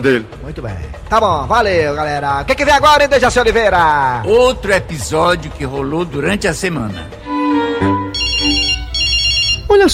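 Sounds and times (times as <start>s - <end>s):
speech: 0.0s - 7.3s, 9.8s - 9.9s
telephone ringtone for an incoming call: 7.6s - 9.9s.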